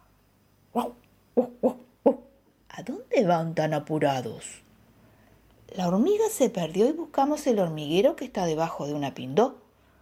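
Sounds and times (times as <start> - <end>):
speech: 0.8 - 1.6, 3.2 - 4.6, 5.7 - 9.6
dog giving short high yipping barks: 0.8 - 2.3.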